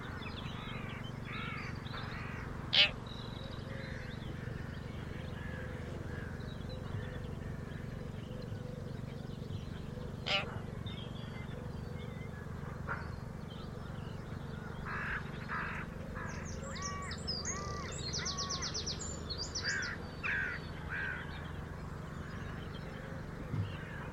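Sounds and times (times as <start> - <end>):
birds calling: 0.0 - 24.1
steady low hum: 0.0 - 24.1.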